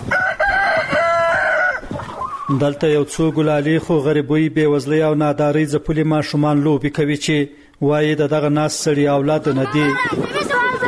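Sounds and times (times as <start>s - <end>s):
chickens in a house yard pecking in the dirt, crowing and clucking: 0.0s - 2.6s
speech: 2.5s - 10.6s.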